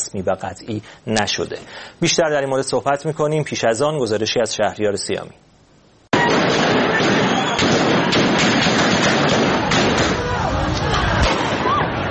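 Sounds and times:
speech: 0.1 - 5.5
gunshots from security forces at a street protest in Iran: 6.1 - 10.4, 11.2 - 11.8
street noise: 6.1 - 12.0
crowd din of voices at a street protest in Iran: 9.5 - 12.0.

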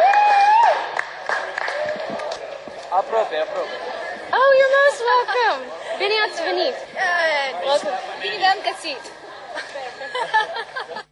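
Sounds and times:
crowd clapping and cheering in a large airport hall: 0.0 - 3.5
speech: 3.2 - 11.0
laughter: 4.9 - 6.7, 7.6 - 11.1.

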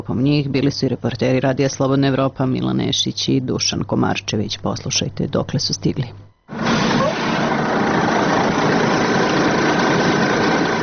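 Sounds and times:
speech: 0.0 - 6.3
bus engine idling as it stops near the Horgoš border crossing in Serbia: 6.5 - 10.8.

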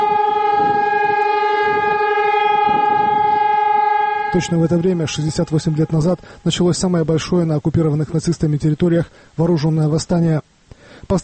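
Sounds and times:
city air-raid sirens wailing in Warsaw in memory of the uprising: 0.0 - 7.1
speech: 4.3 - 10.4.

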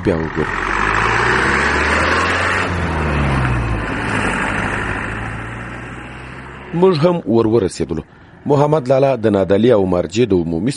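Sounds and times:
speech: 0.0 - 1.4, 6.7 - 10.7
old motorcycle roaring along the main road between Nad Ali and Marjah: 0.0 - 7.2.

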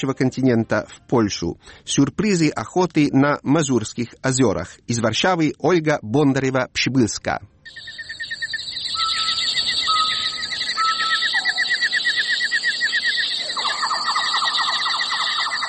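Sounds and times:
speech: 0.0 - 8.1
birds chirping and twittering in a forest in the Masurian Lakes region of Poland: 7.7 - 15.6.

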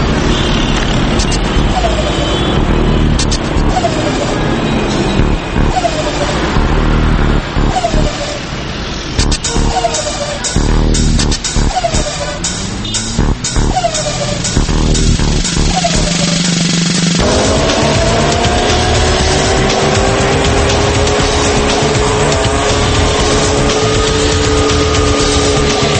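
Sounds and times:
car engine revving hard: 0.1 - 25.9.

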